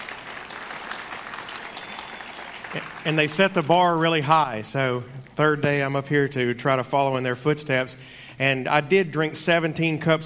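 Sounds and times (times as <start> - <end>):
audience applause at a feast-day gathering: 0.0 - 3.5
speech: 2.7 - 10.2.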